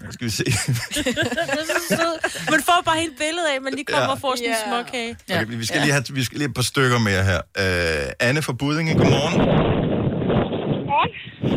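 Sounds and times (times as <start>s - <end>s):
speech: 0.1s - 9.8s
laughter: 0.2s - 4.4s
gusty wind buffeting a phone microphone while cycling: 8.9s - 11.5s.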